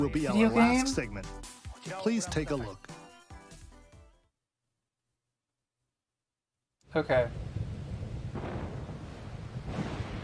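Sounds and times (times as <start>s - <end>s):
speech: 0.0s - 2.9s, 6.9s - 7.5s
low rumbling storm noise: 7.0s - 10.2s
hissing wash of rain: 7.1s - 10.2s.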